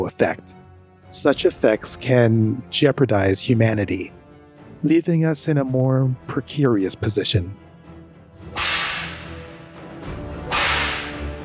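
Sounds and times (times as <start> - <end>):
speech: 0.0 - 4.2, 4.8 - 7.7
whip cracks: 8.6 - 9.4, 10.5 - 11.3.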